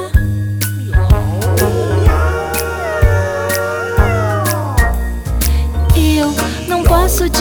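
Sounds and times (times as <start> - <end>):
loud musical backing with a steady regular beat: 0.0 - 7.3
cat meowing: 1.3 - 4.9.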